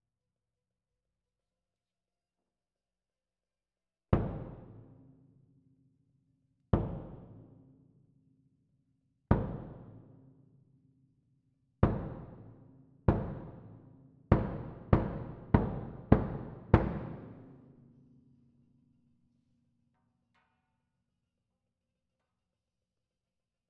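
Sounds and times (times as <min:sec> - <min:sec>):
kick drum: 0:04.2 - 0:04.8, 0:06.8 - 0:07.4, 0:09.3 - 0:09.9, 0:11.8 - 0:12.4, 0:13.1 - 0:17.3.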